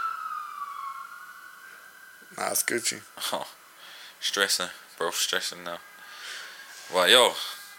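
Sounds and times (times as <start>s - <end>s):
emergency vehicle siren wailing: 0.0s - 3.0s
speech: 2.3s - 3.6s, 4.2s - 5.9s, 6.9s - 7.6s.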